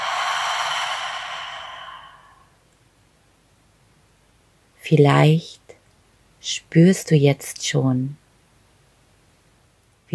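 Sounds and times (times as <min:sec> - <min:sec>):
slow breathy exhalation during a guided meditation breathing exercise: 0:00.0 - 0:02.6
speech: 0:04.9 - 0:05.6, 0:06.4 - 0:08.2.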